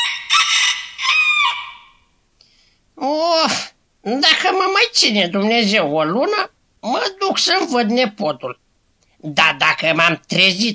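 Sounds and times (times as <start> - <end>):
rooster crowing: 0.0 - 2.1
speech: 4.1 - 8.6, 9.2 - 10.7.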